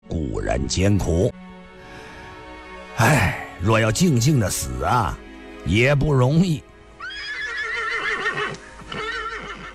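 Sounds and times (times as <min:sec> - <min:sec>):
speech: 0:00.4 - 0:01.4, 0:03.0 - 0:06.7
horse hitched to a carriage whinnying, setting off through snow: 0:07.0 - 0:09.7.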